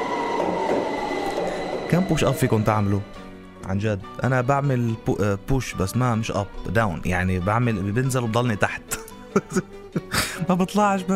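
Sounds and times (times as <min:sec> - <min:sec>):
metallic squeal of metro train wheels on rails: 0:00.0 - 0:03.4
metro train arriving: 0:00.0 - 0:03.4
speech: 0:01.9 - 0:11.1
laughter: 0:08.9 - 0:10.4.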